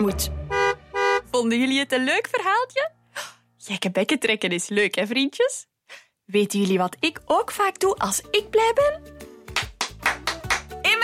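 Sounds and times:
speech: 0.0s - 0.4s, 1.4s - 9.3s
hand claps: 9.5s - 10.8s.

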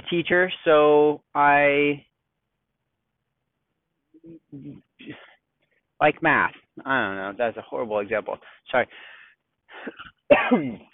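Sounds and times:
speech: 0.1s - 2.1s, 4.2s - 5.3s, 6.0s - 9.2s, 9.8s - 10.9s
raspy throat clearing: 4.3s - 5.4s, 9.8s - 10.9s
cough-like hack: 9.8s - 10.9s.

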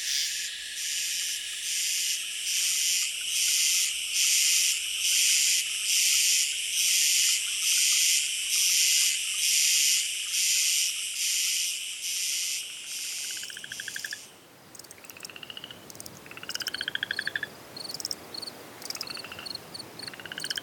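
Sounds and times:
dense evening chorus of frogs calling in pulsed bursts: 0.0s - 20.6s
steady shimmering buzz of insects: 0.0s - 20.6s.

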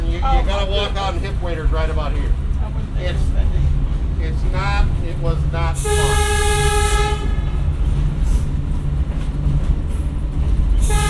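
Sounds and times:
passenger train rolling on its rails: 0.0s - 11.0s
speech: 0.6s - 7.0s
bright tonal horn-like chord: 5.8s - 7.8s, 10.8s - 11.0s.

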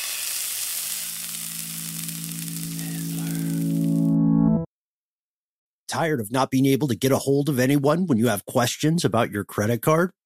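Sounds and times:
steady sizzle: 0.0s - 4.1s
low hum: 1.1s - 4.7s
speech: 5.9s - 10.2s.

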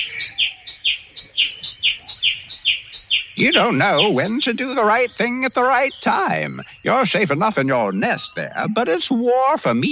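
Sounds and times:
songbird singing bright high-pitched two-note chirps: 0.0s - 9.9s
speech: 3.4s - 9.9s.

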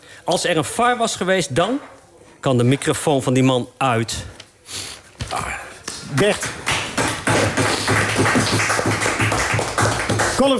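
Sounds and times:
speech: 0.2s - 5.5s, 6.1s - 6.7s, 8.2s - 9.1s, 10.4s - 10.5s
hands clapping above the head in applause: 5.8s - 10.5s.

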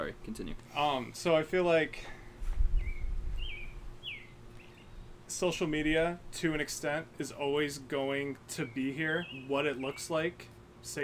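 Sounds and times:
speech: 0.0s - 2.2s, 5.3s - 11.0s
bird chirping outdoors: 2.7s - 5.2s, 8.5s - 10.3s.

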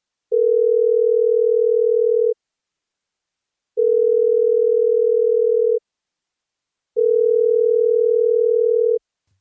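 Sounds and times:
outgoing phone call electronic ringback tones: 0.3s - 2.4s, 3.8s - 5.8s, 7.0s - 9.0s.

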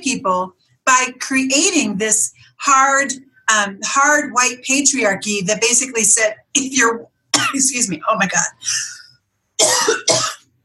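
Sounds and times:
speech: 0.0s - 9.0s
harsh coughing from pollen irritating the throat: 9.6s - 10.5s.

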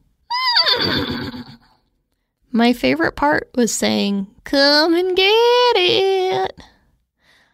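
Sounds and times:
human voice imitating a horse whinny for a cowboy-themed radio ad: 0.3s - 1.8s
speech: 2.5s - 6.7s.

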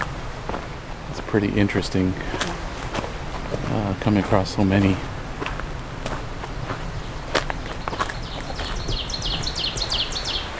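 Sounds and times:
snaps and footstep-like crunches: 0.0s - 10.5s
steady outdoor noise: 0.0s - 10.5s
speech: 1.3s - 2.6s, 3.7s - 5.1s
ovenbird singing two-note phrases: 3.4s - 5.2s, 6.1s - 10.5s.

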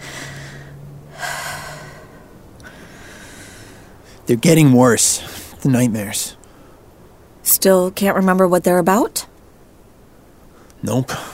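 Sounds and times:
sharp gasping intake of breath: 0.0s - 4.2s
heavy ragged breathing of a person catching their breath: 0.0s - 4.3s, 5.2s - 5.6s
speech: 4.3s - 6.4s, 7.5s - 9.3s, 10.8s - 11.3s.

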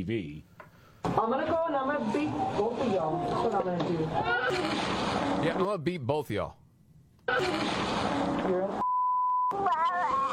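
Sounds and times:
speech: 0.0s - 0.5s, 1.1s - 6.6s, 7.3s - 8.8s, 9.5s - 10.3s
steady censor bleep over recorded speech: 8.8s - 9.6s
child talking in recorded audio: 9.5s - 10.3s.

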